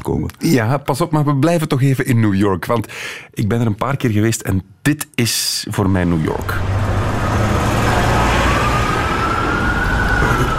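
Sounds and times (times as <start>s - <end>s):
speech: 0.1s - 7.6s
dense steady roar of city traffic: 6.0s - 10.5s
emergency vehicle sirens wailing: 6.4s - 10.5s.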